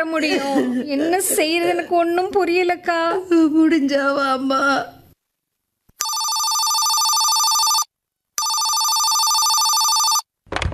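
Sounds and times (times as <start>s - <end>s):
speech: 0.0s - 5.0s
telephone ringing: 6.0s - 10.3s.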